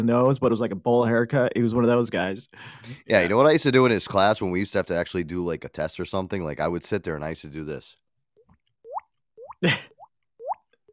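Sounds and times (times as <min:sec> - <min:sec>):
speech: 0:00.0 - 0:08.0, 0:09.6 - 0:09.9
student imitating water dripping with the mouth in class: 0:08.4 - 0:10.9.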